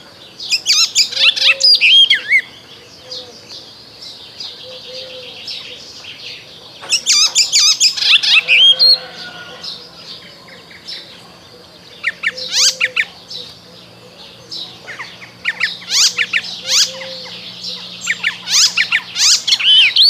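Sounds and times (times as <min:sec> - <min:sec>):
icterine warbler song: 0:00.0 - 0:20.0.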